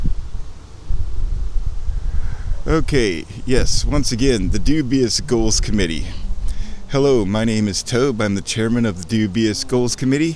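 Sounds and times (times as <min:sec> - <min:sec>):
wind blowing outdoors in gusts: 0:00.0 - 0:10.3
speech: 0:02.7 - 0:06.2, 0:06.9 - 0:10.3.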